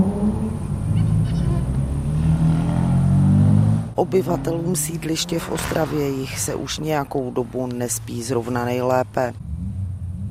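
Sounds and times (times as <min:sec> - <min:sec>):
about ten powerful car engines idling and revving in a shopping centre parking lot: 0:00.0 - 0:06.8, 0:09.4 - 0:10.2
speech: 0:04.0 - 0:09.5.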